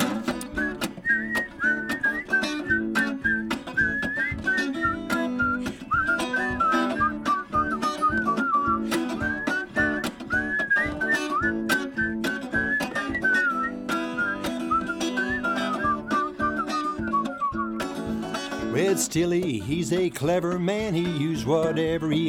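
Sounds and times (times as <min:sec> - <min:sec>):
rhythmic instrumental backing with sharp percussive clicks: 0:00.0 - 0:22.2
several people whistling a bright melody together: 0:00.5 - 0:18.2
speech: 0:19.0 - 0:22.2.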